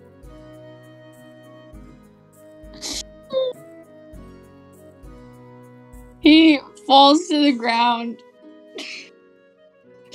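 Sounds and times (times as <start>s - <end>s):
speech: 6.2s - 8.3s
person imitating a wounded character coughing: 8.8s - 9.1s.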